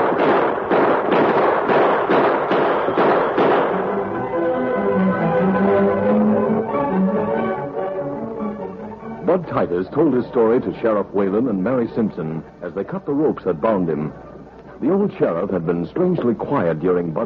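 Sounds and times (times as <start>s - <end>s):
gunshots in a shootout between mounted men: 0.0s - 4.0s
music: 2.8s - 17.2s
speech: 9.6s - 17.2s.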